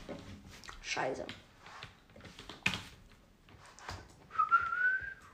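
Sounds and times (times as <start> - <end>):
speech: 1.0 - 1.5
person whistling a short clear tune: 4.3 - 5.3.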